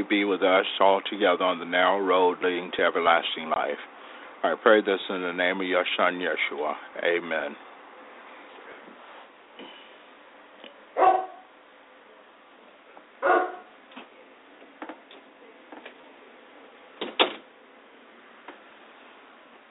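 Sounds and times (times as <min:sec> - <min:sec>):
speech: 0:00.0 - 0:07.7
dog barking: 0:11.0 - 0:11.5, 0:13.2 - 0:13.7.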